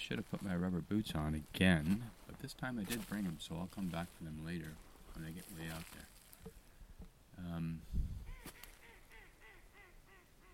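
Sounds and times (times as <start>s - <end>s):
speech: 0.0s - 6.6s, 7.4s - 8.2s
trumpeter swan honks on an estuary at low tide, Haida Gwaii: 8.3s - 10.5s.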